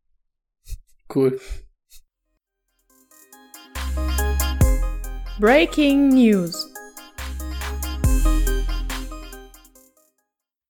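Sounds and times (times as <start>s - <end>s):
speech: 1.1s - 1.7s, 5.4s - 6.6s
podcast segment musical jingle with percussive hits and synth tones: 3.0s - 10.0s.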